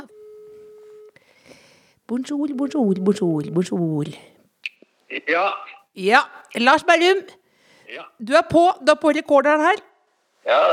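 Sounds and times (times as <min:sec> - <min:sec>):
telephone ringback tone while calling a friend: 0:00.0 - 0:01.2, 0:03.0 - 0:04.3
speech: 0:02.1 - 0:04.3, 0:05.3 - 0:09.9, 0:10.5 - 0:10.7.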